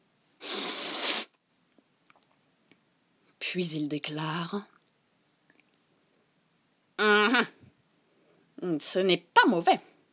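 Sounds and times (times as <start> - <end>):
sharp sniff through the nose: 0.4 - 1.3
speech: 3.6 - 4.8, 8.8 - 9.9.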